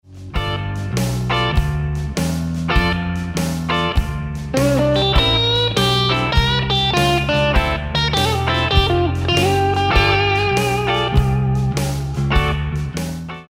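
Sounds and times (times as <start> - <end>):
guitar lick: 0.4 - 13.4.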